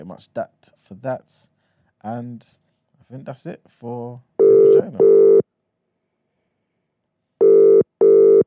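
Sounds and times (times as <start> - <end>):
speech: 0.0 - 5.4
telephone ringback tone on an outgoing call: 4.4 - 5.4, 7.4 - 8.4.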